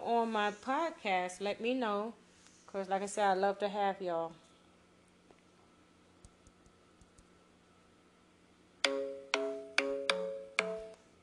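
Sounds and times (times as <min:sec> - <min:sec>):
speech: 0:00.3 - 0:04.4
phone ringtone: 0:08.8 - 0:11.0.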